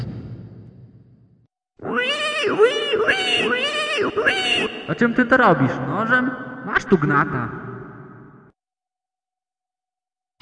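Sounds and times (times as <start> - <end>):
pig squealing: 1.8 - 5.1
speech: 2.5 - 7.6.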